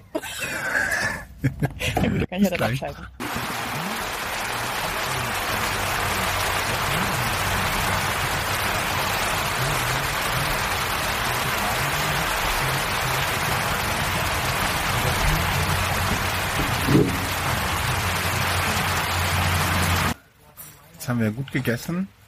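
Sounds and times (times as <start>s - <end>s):
laughter: 0.0s - 2.3s, 3.4s - 19.1s
speech: 1.4s - 3.2s, 21.1s - 22.2s
light rain shower: 3.2s - 20.2s
faint murmuring voices: 3.5s - 20.2s.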